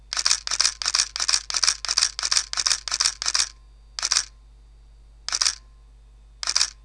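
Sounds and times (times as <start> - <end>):
Nikon D70s camera shutter continuous shooting: 0.1 - 4.3, 5.3 - 5.6, 6.4 - 6.8.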